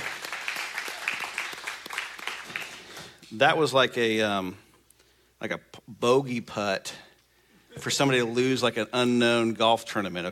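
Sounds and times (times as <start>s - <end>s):
light scattered applause from a modest crowd: 0.0s - 3.3s
speech: 3.3s - 4.6s, 5.4s - 7.0s, 7.8s - 10.3s.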